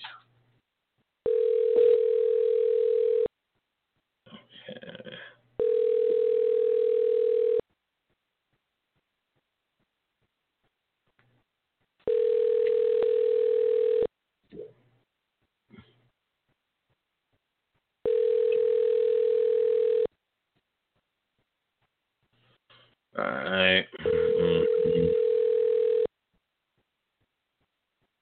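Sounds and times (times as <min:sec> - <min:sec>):
long steady electronic phone ringback tones: 0:01.2 - 0:03.3, 0:05.6 - 0:07.6, 0:12.0 - 0:14.1, 0:18.0 - 0:20.1, 0:24.0 - 0:26.1.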